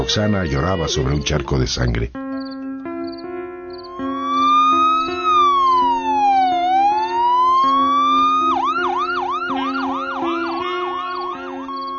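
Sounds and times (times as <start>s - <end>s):
speech: 0.0s - 2.2s
loud ambulance siren wailing and yelping: 3.9s - 11.9s.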